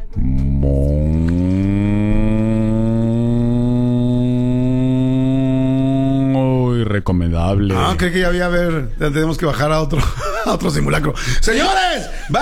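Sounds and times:
cow mooing: 0.0 - 6.5
speech: 7.0 - 12.3
laughter: 9.9 - 12.3.

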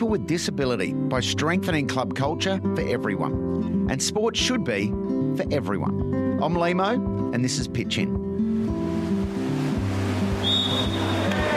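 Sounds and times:
speech: 0.0 - 8.8
water splashing in an indoor swimming pool in Sydney: 8.6 - 11.5
short whistle at an indoor swimming pool: 10.4 - 11.5.

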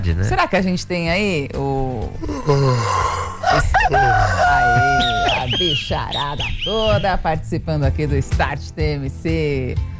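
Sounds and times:
speech: 0.0 - 9.9
rooster crowing: 3.4 - 5.5.

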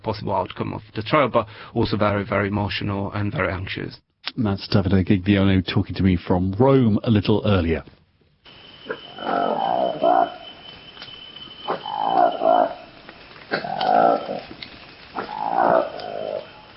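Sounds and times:
speech: 0.0 - 8.0
Lesula monkey booming calls: 8.8 - 16.7.

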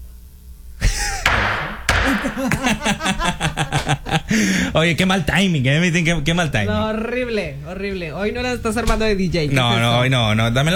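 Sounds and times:
laughter: 0.8 - 4.8
gavel thuds with long ringing decay: 1.2 - 3.0
speech: 2.2 - 10.7.

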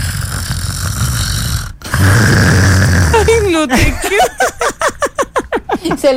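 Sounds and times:
person imitating a man's rough rasping snoring: 0.0 - 3.7
laughter: 3.2 - 6.1
speech: 3.4 - 5.0, 5.8 - 6.1.

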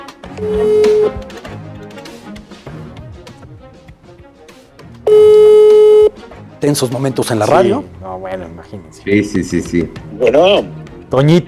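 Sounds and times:
music: 0.0 - 11.4
loud sustained tone with rich overtones: 0.4 - 1.1
speech: 0.4 - 1.2, 6.6 - 11.4
telephone line tones as a call is dialed: 0.4 - 1.2, 5.1 - 6.1.

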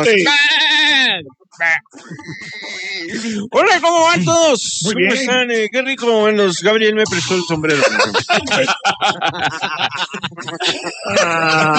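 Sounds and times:
laughter: 0.0 - 0.5, 1.6 - 5.8, 7.0 - 11.7
speech: 0.0 - 11.7
goat bleating: 0.2 - 3.1.

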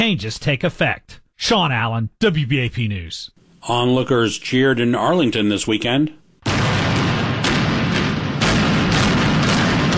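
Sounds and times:
speech: 0.0 - 6.2
demolition charges imploding a large hotel building outdoors: 6.4 - 9.9.

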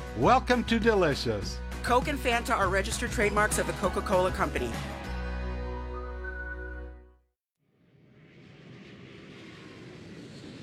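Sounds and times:
speech: 0.2 - 5.0
roaring rush of airplane engine noise at an airport gate: 8.0 - 10.6.

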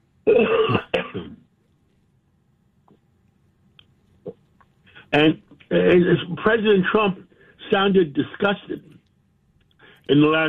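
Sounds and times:
person clearing their throat: 0.2 - 1.4
speech: 0.3 - 0.8, 5.1 - 8.9, 10.1 - 10.4
faint clicks: 2.8 - 4.8, 8.8 - 10.1.

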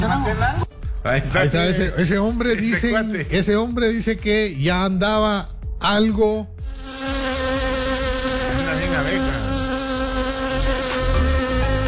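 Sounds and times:
speech: 0.2 - 7.2
many insects buzzing: 6.6 - 11.8.

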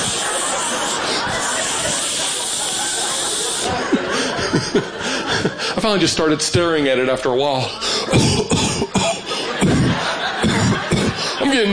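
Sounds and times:
aerosol deodorant can spraying onto shirt armpits: 0.0 - 3.8
person chuckling: 0.0 - 5.6, 8.1 - 11.3
speech: 5.8 - 8.9, 11.5 - 11.7.

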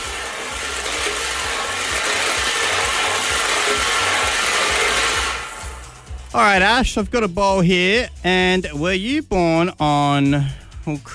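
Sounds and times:
lottery balls tumbling in a spinning drum: 0.0 - 5.9
speech: 6.3 - 11.1.

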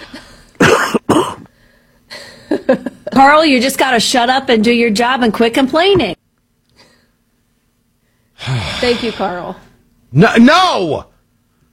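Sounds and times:
person giving forced fake coughs: 0.6 - 1.5
speech: 2.7 - 6.2, 8.4 - 11.1.

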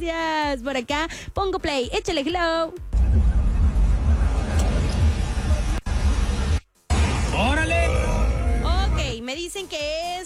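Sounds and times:
speech: 0.0 - 2.9, 7.4 - 8.0, 9.3 - 10.2
road traffic on Boulevard Alberto Limón Padilla played from a phone video: 3.0 - 9.2.

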